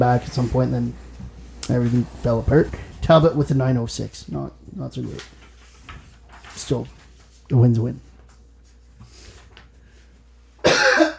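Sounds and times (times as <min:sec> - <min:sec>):
speech: 0:00.0 - 0:01.0, 0:01.7 - 0:05.4, 0:06.6 - 0:08.1
person coughing to clear phlegm from the throat: 0:10.6 - 0:11.1.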